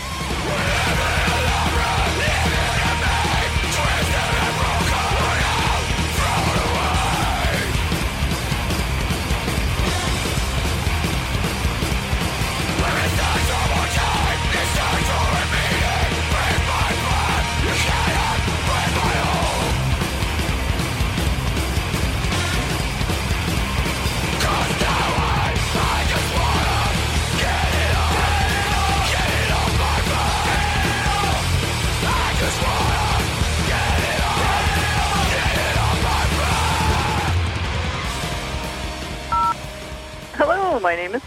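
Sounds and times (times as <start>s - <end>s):
harsh screamed vocals: 0.0s - 7.8s, 12.8s - 19.8s, 24.4s - 37.5s
loud dense distorted music: 0.0s - 41.2s.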